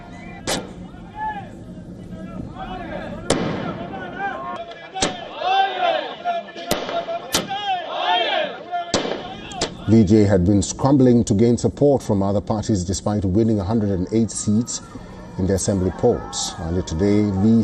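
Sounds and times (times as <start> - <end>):
noisy crowd shouting and cheering at an outdoor celebration: 0.0 - 10.1, 13.4 - 17.6
firecracker bangs during street celebration: 0.4 - 0.8, 3.3 - 5.4, 6.1 - 7.7, 8.9 - 9.9
speech: 9.9 - 17.6.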